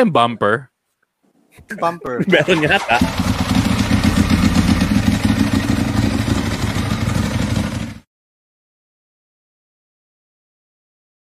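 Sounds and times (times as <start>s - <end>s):
speech: 0.0s - 0.7s, 1.6s - 3.4s
laughter: 1.7s - 4.9s
Harley motorcycle engine idling with single-carb rumble: 2.5s - 8.0s.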